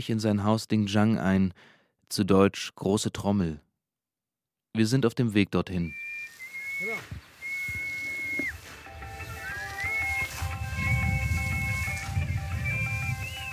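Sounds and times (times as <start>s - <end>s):
speech: 0.0s - 3.6s, 4.7s - 6.0s, 6.8s - 7.3s
two girls whistling old melodies while winnowing: 5.9s - 13.5s
rustling swishing noise of winnowing: 6.2s - 13.5s.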